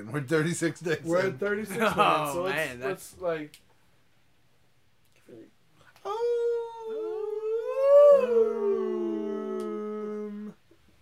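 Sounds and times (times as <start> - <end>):
speech: 0.0 - 3.6
dog or wolf howling: 6.1 - 10.6.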